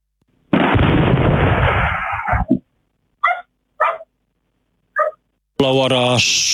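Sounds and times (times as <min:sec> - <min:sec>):
loud explosion recorded by surveillance camera: 0:00.5 - 0:02.5
dog barking: 0:03.2 - 0:04.1, 0:05.0 - 0:05.2
speech: 0:05.6 - 0:06.5.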